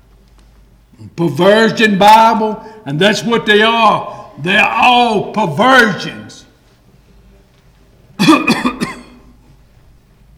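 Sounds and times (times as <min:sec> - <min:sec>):
speech: 0:01.0 - 0:06.3
person clearing throat: 0:08.2 - 0:09.4
person coughing: 0:08.2 - 0:09.4.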